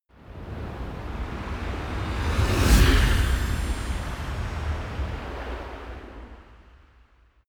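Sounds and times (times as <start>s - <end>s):
magic whoosh gust: 0.8s - 6.7s.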